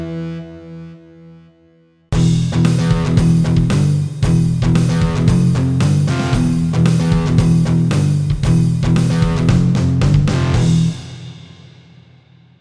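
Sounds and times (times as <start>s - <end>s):
power chord groove: 2.1s - 11.8s.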